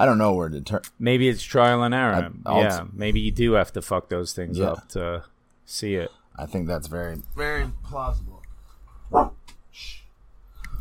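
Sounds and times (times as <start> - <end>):
speech: 0.0 - 8.4, 9.1 - 10.0
dog barking: 9.1 - 9.4.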